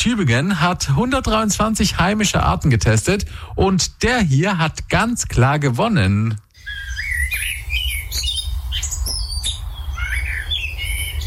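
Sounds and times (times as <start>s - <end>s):
speech: 0.0s - 6.8s
Eurasian blackbird singing: 6.6s - 11.2s.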